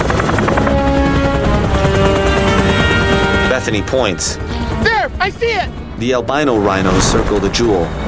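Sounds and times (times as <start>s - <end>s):
helicopter whining engine tone: 0.0s - 4.9s
helicopter rotor chopping while hovering and lowering: 0.0s - 5.4s
speech: 3.7s - 8.0s.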